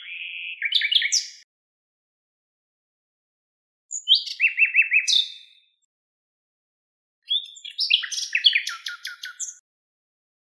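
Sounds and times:
Common nightingale singing: 0.0s - 1.4s, 3.9s - 5.6s, 7.3s - 9.6s.

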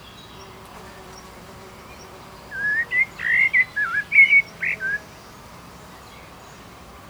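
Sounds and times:
Common blackbird Turdus merula delivering a flutey warbled phrase: 2.6s - 5.0s.

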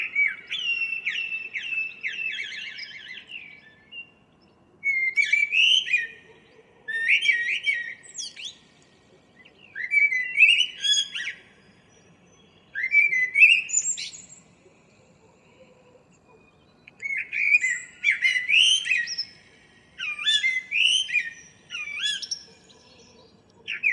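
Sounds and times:
common blackbird Turdus merula singing: 0.0s - 23.9s.

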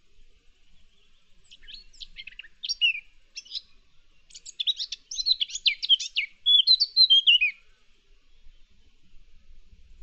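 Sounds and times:
Eurasian blackcap Sylvia atricapilla twittering and warbling: 1.4s - 3.7s, 4.3s - 7.6s.

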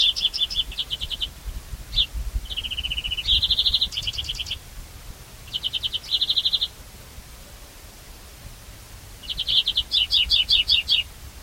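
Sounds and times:
European greenfinch Chloris chloris trills and chirps: 0.0s - 4.6s, 5.4s - 6.8s, 9.2s - 11.1s.

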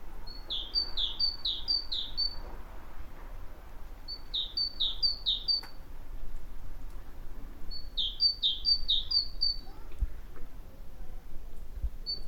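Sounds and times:
great tit Parus major singing: 0.3s - 2.4s, 4.1s - 5.8s, 7.7s - 9.8s, 12.0s - 12.2s.

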